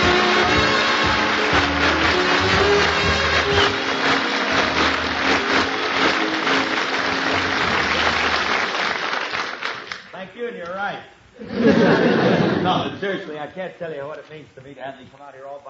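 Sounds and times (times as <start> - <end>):
studio audience applause: 0.0 - 10.1
laughter: 11.4 - 13.3
speech: 13.1 - 15.6.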